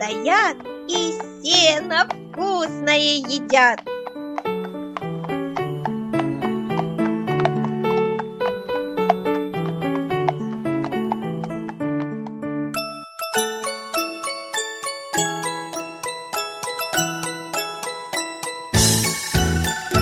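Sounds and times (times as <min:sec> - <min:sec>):
speech: 0:00.0 - 0:03.9
horse hooves trotting as horses hurry home to their stable: 0:00.0 - 0:12.9
bright bouncy musical melody: 0:00.0 - 0:20.0
brief jingle: 0:12.7 - 0:20.0.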